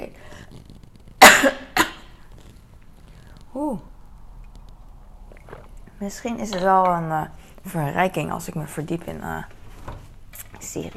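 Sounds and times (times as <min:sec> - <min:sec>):
person coughing sharply: 0:01.2 - 0:02.1
speech: 0:03.6 - 0:03.9, 0:06.0 - 0:09.6, 0:10.7 - 0:10.9.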